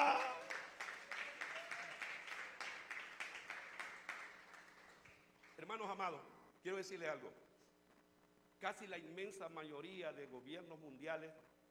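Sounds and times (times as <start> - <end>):
crowd clapping in rhythm in praise during a sermon: 0.0 - 5.7
speech: 5.8 - 7.5, 8.6 - 11.5.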